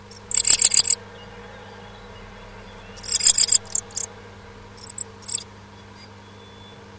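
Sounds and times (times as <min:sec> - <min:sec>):
bird chirps in a nest box: 0:00.1 - 0:04.1, 0:04.8 - 0:06.8
low hum: 0:00.1 - 0:05.4.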